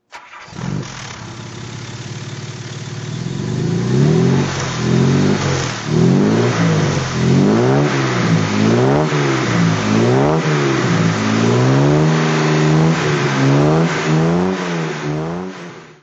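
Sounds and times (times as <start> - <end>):
Jaguar MkII 3.8 automatic engine throttle: 0.1 - 16.0.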